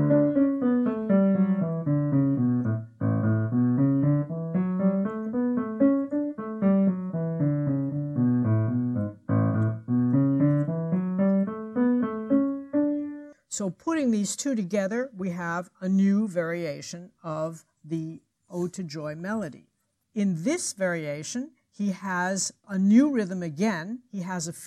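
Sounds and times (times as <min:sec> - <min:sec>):
running bass line played on its own: 0:00.0 - 0:12.6
speech: 0:13.6 - 0:24.6.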